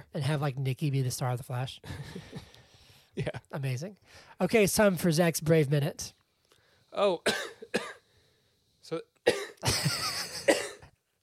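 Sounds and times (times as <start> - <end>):
speech: 0.1 - 2.5, 3.2 - 6.2, 6.9 - 7.9, 8.9 - 10.2
harsh raspy hacking coughing: 7.2 - 8.2, 9.2 - 10.9.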